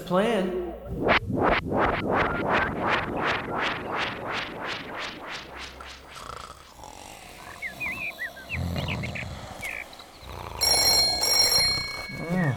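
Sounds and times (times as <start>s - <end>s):
speech: 0.1s - 5.8s
rhythmic rasping roar-like sounds: 5.8s - 12.5s
clubhouse telephone ringing with electronic tone: 10.6s - 12.5s.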